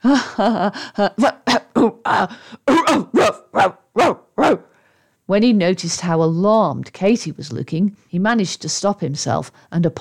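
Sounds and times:
speech: 0.0s - 4.6s, 5.3s - 9.9s
dog barking fit with yelping barks: 2.7s - 4.7s.

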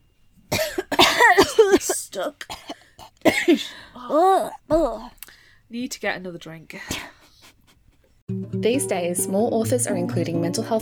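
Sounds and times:
harsh coughing: 0.5s - 5.4s, 6.8s - 8.0s
speech: 2.2s - 2.7s, 3.5s - 7.1s, 8.3s - 10.7s.

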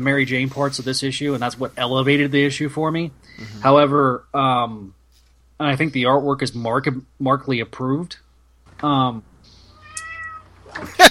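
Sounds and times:
speech: 0.0s - 5.0s, 5.6s - 8.2s, 8.8s - 9.3s, 10.8s - 11.0s
cat meowing: 9.7s - 10.7s.

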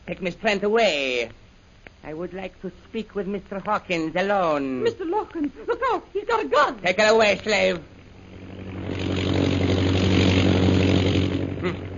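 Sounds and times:
speech: 0.1s - 1.4s, 2.0s - 8.0s, 11.6s - 11.9s
propeller airplane engine droning overhead: 4.9s - 11.9s.

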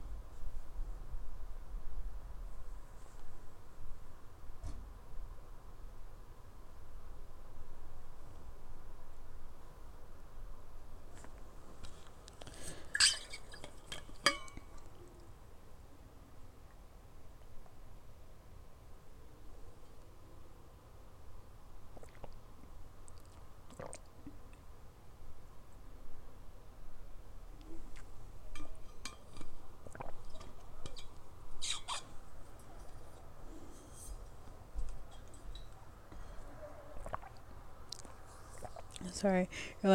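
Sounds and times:
steady low hiss: 0.0s - 39.9s
glass clinking: 12.9s - 14.7s
person swallowing water from a glass: 21.9s - 22.4s, 23.1s - 24.5s, 29.8s - 30.6s, 36.9s - 39.0s
speech: 39.1s - 39.9s.

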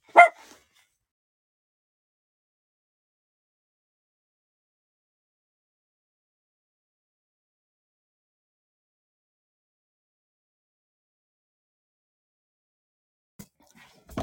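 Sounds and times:
dog barking on alert: 0.0s - 0.6s.

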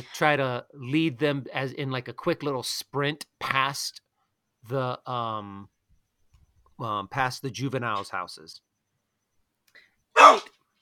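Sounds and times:
speech: 0.0s - 4.0s, 4.6s - 5.7s, 6.8s - 8.7s, 10.2s - 10.5s
dog bark: 10.2s - 10.5s.

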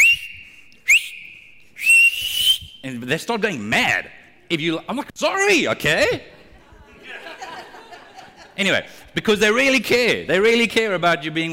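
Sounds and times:
lifeguard's whistle blasts at a beach: 0.0s - 2.9s
speech: 2.9s - 6.3s, 8.6s - 11.5s
laughter: 6.3s - 9.2s.

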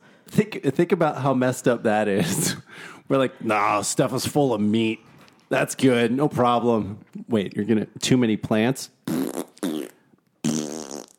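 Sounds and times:
speech: 0.4s - 9.4s
loud buzzy fart noises: 9.0s - 11.1s.

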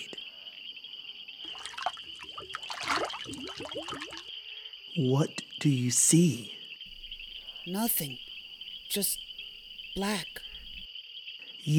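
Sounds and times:
water sloshing as black powder is stirred in: 1.4s - 4.3s, 6.9s - 10.9s
speech: 5.0s - 6.6s, 7.7s - 8.2s, 8.9s - 9.3s, 10.0s - 10.4s.

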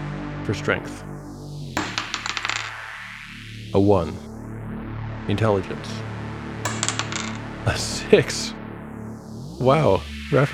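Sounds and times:
speech: 0.5s - 1.3s, 3.7s - 4.3s, 5.3s - 6.1s, 7.6s - 8.6s, 9.6s - 10.5s
dice rolling on a hard table: 1.8s - 2.9s, 6.7s - 7.5s.

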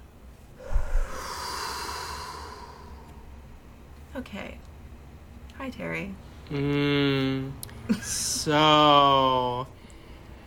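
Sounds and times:
snort-like burst of air: 0.6s - 3.2s
deep breathing in and out: 0.6s - 3.4s
speech: 4.2s - 4.7s, 5.6s - 9.8s.

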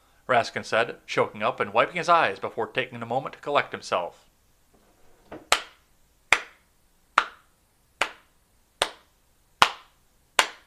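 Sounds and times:
speech: 0.3s - 4.3s
single person slow clapping: 5.4s - 10.6s.

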